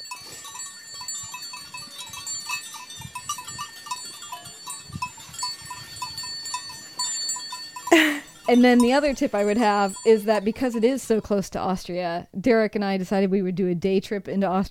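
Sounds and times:
sheep grazing and munching: 0.0 - 11.0
steady jangle of small bells: 0.0 - 11.6
speech: 8.5 - 14.6.

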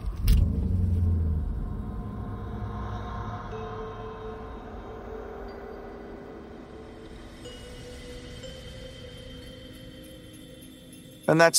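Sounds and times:
car engine starting and idling: 0.0 - 5.5
speech: 11.3 - 11.5.

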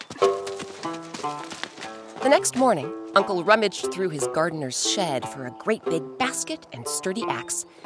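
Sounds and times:
horse hooves galloping: 0.0 - 4.4
speech: 2.2 - 7.8.

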